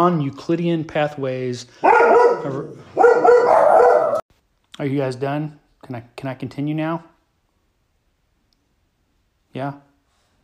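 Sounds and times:
speech: 0.0s - 3.6s, 4.8s - 7.1s, 9.6s - 9.9s
dog barking at something outside the window: 1.8s - 4.2s.

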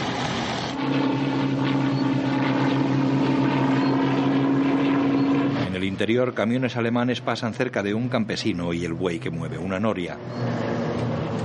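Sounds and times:
light aircraft engine droning over an island: 0.0s - 11.4s
speech: 6.0s - 11.0s.

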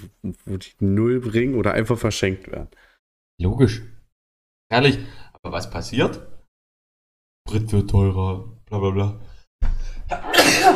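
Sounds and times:
speech: 0.2s - 4.0s, 4.7s - 6.3s, 7.5s - 10.7s
sneeze: 10.2s - 10.7s.

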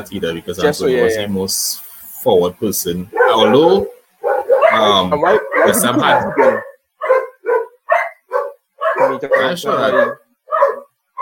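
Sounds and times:
speech: 0.0s - 4.0s, 4.8s - 6.7s, 9.2s - 10.2s
pet dog barking: 3.1s - 11.2s.

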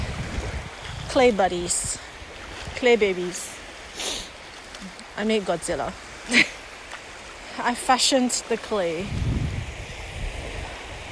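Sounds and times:
low rumbling gusts of wind buffeting the microphone: 0.0s - 3.4s, 8.9s - 11.1s
ocean surf: 0.0s - 11.1s
speech: 1.2s - 2.1s, 2.8s - 3.5s, 4.8s - 6.6s, 7.6s - 9.3s.

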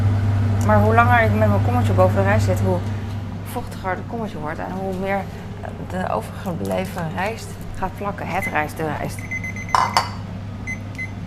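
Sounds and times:
steady low hum: 0.0s - 11.2s
speech: 0.7s - 3.0s, 3.6s - 10.1s
kitchen timer beeping softly: 8.4s - 10.1s, 10.7s - 11.2s.

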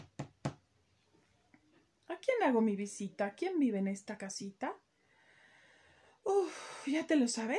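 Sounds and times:
knocking on a door: 0.0s - 0.6s
speech: 2.2s - 4.8s, 6.9s - 7.5s.

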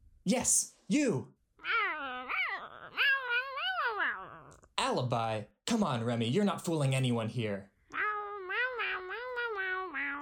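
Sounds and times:
speech: 0.2s - 1.9s, 4.9s - 7.7s
cat meowing: 1.6s - 4.6s, 7.9s - 10.2s.

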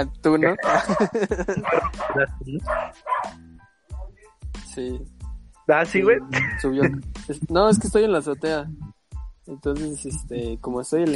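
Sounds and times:
speech: 0.0s - 3.4s, 4.8s - 11.1s
laughter: 0.6s - 2.3s, 6.2s - 8.6s
dog barking on a rooftop: 0.6s - 3.4s.

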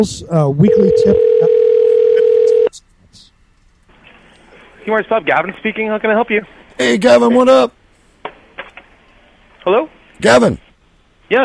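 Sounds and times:
speech: 0.0s - 1.6s, 4.8s - 7.8s, 9.6s - 10.6s, 11.3s - 11.4s
telephone dial tone while a call is dialed: 1.0s - 2.7s.

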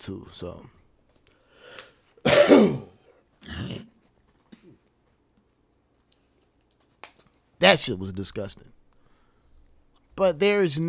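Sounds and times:
speech: 0.0s - 0.8s, 2.6s - 2.9s, 7.6s - 8.7s, 10.2s - 10.8s
loud harsh cough: 2.2s - 4.0s
throat clearing: 2.3s - 4.8s.

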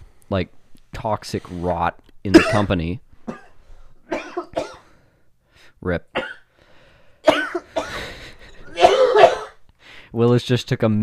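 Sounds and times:
speech: 0.3s - 3.0s, 5.8s - 6.2s, 10.1s - 11.0s
harsh coughing fit with hacking: 2.3s - 4.9s, 6.1s - 6.5s, 7.2s - 9.6s.

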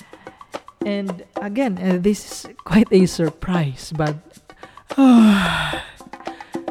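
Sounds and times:
faint breathy sounds: 0.0s - 0.7s, 4.6s - 6.6s
speech: 0.8s - 4.4s, 5.0s - 5.9s
long drawn-out yawn with falling voiced moan: 4.8s - 6.6s.

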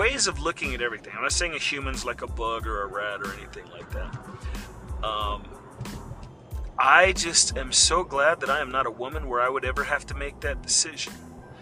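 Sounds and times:
low rumbling background: 0.0s - 11.6s
speech: 0.1s - 6.0s, 6.8s - 11.3s
car's automated voice speaking: 1.8s - 4.2s, 5.0s - 5.5s, 6.8s - 11.1s.

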